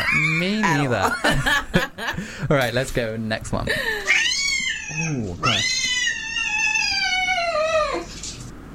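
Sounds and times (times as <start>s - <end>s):
speech: 0.1s - 1.8s, 2.5s - 4.0s, 4.9s - 5.8s
cat yowling: 4.0s - 8.2s.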